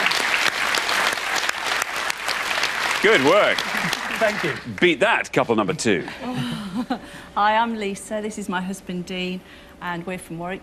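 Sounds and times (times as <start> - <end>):
studio audience applause at a game show: 0.0 - 5.5
speech: 3.0 - 10.6.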